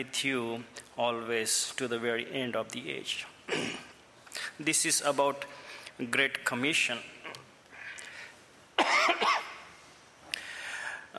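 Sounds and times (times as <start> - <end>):
speech: 0.0 - 7.2
harsh double cough from a person with a cough: 3.5 - 4.0, 8.8 - 9.6.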